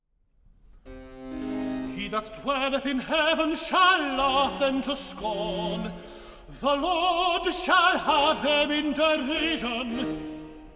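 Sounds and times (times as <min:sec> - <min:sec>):
person singing a sacred Christmas recitative: 0:02.0 - 0:06.0, 0:06.6 - 0:10.4.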